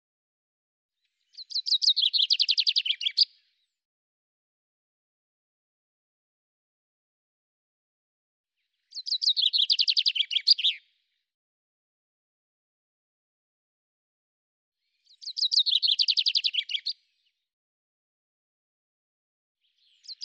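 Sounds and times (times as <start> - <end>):
common chaffinch song with descending trilled phrases: 1.0 - 3.8, 8.6 - 11.2, 14.8 - 17.4, 19.6 - 20.2.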